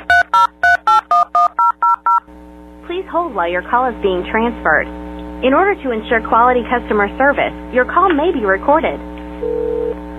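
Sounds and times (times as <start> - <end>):
phone keypad tones entering a wireless phone number on a customer service call: 0.0 - 2.2
speech: 3.3 - 9.6.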